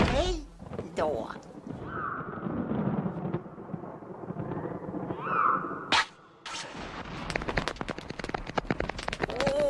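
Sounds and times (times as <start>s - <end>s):
low rumbling of an approaching thunderstorm: 0.2s - 5.9s, 6.7s - 9.5s
speech: 1.0s - 1.5s
sharp loud thunder cracks: 1.5s - 5.9s, 6.7s - 9.1s.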